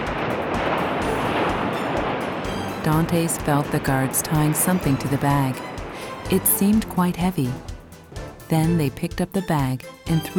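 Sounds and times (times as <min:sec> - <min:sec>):
sea waves roaring below a cliff: 0:00.0 - 0:08.1
speech: 0:02.8 - 0:05.7, 0:06.3 - 0:07.7, 0:08.5 - 0:10.3.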